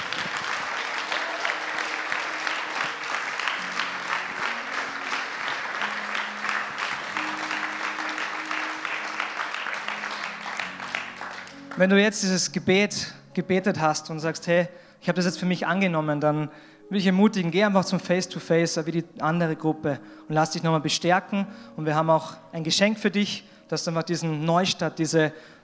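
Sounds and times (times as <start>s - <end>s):
church audience applauding: 0.0s - 11.8s
speech: 11.8s - 25.6s.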